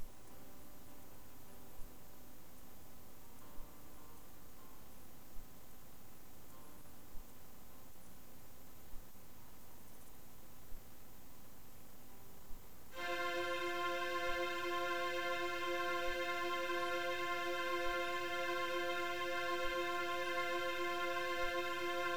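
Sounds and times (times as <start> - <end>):
strings: 13.0 - 22.1.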